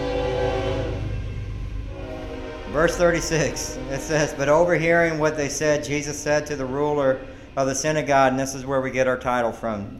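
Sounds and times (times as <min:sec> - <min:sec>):
train horn blast: 0:00.0 - 0:05.4
train rumbling past: 0:00.0 - 0:09.9
speech: 0:02.7 - 0:09.9.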